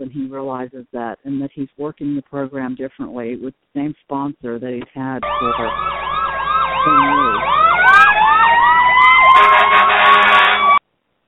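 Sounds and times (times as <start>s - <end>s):
speech: 0.0s - 6.2s, 6.8s - 7.6s
emergency vehicle siren warbling in fast repeating sweeps: 5.2s - 10.8s.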